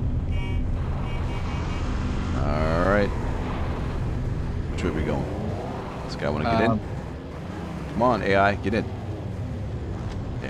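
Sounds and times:
Warthog vehicle engine driving in a video game: 0:00.0 - 0:10.4
speech: 0:08.0 - 0:09.0.

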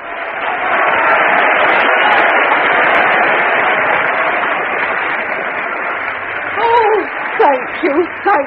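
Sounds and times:
large audience applause: 0:00.0 - 0:08.4
person's voice: 0:06.6 - 0:08.4.

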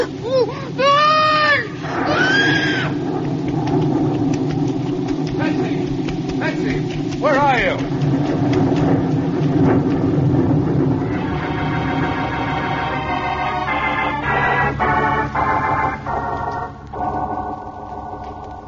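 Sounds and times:
heavy rain in the jungle: 0:00.0 - 0:18.6
howling tonal layer over the downpour: 0:00.8 - 0:18.6
deep rumbling thunder in the jungle: 0:01.6 - 0:18.6.

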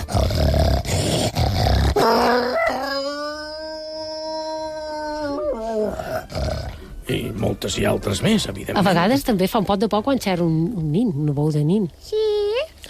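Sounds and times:
harsh noisy snarl: 0:00.0 - 0:02.6
werewolf howl sound effect: 0:01.8 - 0:06.7
speech: 0:07.6 - 0:12.3.

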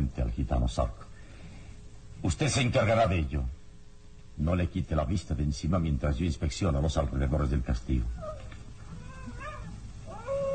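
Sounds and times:
speech: 0:00.4 - 0:01.0, 0:02.2 - 0:03.6, 0:04.4 - 0:08.4
animal howling, possibly a lone wolf: 0:08.1 - 0:10.5.

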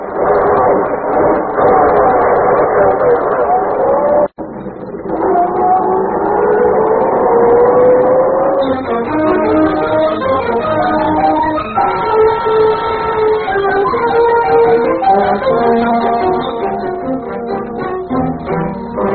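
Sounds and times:
car engine revving and accelerating out of a garage: 0:00.0 - 0:19.1.

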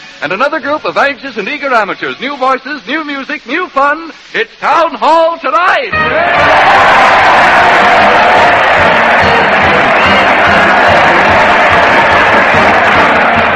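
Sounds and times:
speech: 0:00.2 - 0:10.7
large crowd cheering: 0:05.9 - 0:13.5
scattered shouts and whoops: 0:06.0 - 0:13.5.

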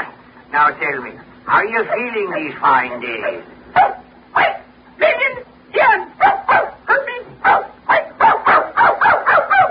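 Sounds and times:
speech: 0:00.5 - 0:03.6
dog barking: 0:01.8 - 0:04.7, 0:06.2 - 0:09.6.

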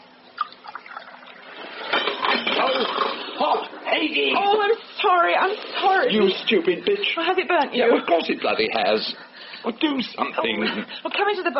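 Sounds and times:
coffee pouring into a cup aboard a boat: 0:00.4 - 0:03.6
speech: 0:04.0 - 0:11.5.

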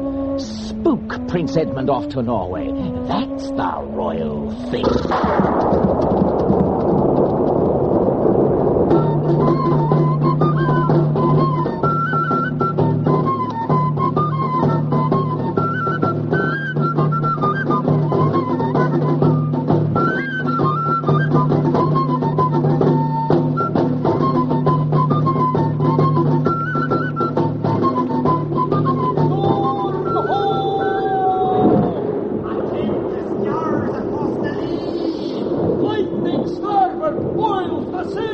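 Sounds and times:
tonal melody: 0:00.0 - 0:07.2, 0:08.3 - 0:31.1
speech: 0:00.4 - 0:06.3
heavy rain: 0:02.8 - 0:38.3
low rumbling thunder: 0:04.4 - 0:13.6, 0:16.6 - 0:26.9, 0:28.4 - 0:38.3.

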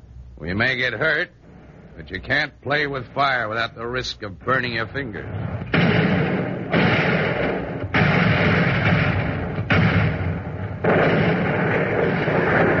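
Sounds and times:
speech: 0:00.4 - 0:01.4, 0:02.0 - 0:05.6
enemy coastal artillery guns firing at night during a wartime beach landing: 0:05.2 - 0:12.7.

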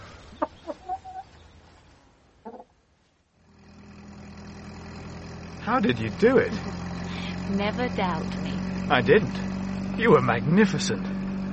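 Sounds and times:
flock of chickens clucking and squawking: 0:00.0 - 0:01.7, 0:02.4 - 0:02.8
steady engine rumble: 0:00.0 - 0:11.5
speech: 0:05.7 - 0:06.8, 0:07.5 - 0:11.1.

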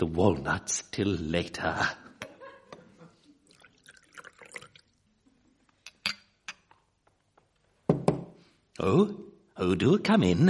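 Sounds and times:
speech: 0:00.0 - 0:02.0, 0:08.8 - 0:10.4
port poured into a glass: 0:03.4 - 0:05.1
sharp glassy clinks: 0:05.9 - 0:06.7.

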